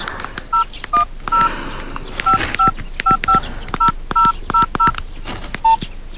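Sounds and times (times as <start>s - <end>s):
faint noise: 0.0s - 6.1s
dual-tone telephone keypad beeps dialing an outgoing call: 0.5s - 1.5s, 2.2s - 5.0s.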